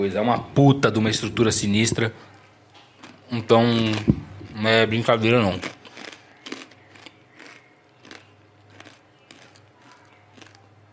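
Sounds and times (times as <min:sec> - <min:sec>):
speech: 0:00.0 - 0:02.4, 0:03.3 - 0:05.8
low steady hum: 0:00.0 - 0:10.9
crunchy chewing of food: 0:02.3 - 0:10.8.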